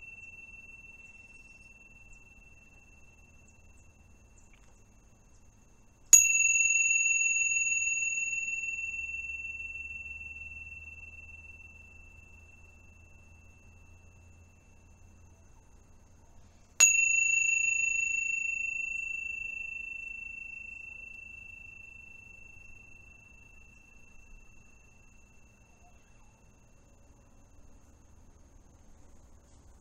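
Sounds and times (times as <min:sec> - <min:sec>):
faint low hum: 0:00.0 - 0:29.7
bell strikes with a bright sustained ring: 0:06.2 - 0:12.8, 0:16.8 - 0:24.6.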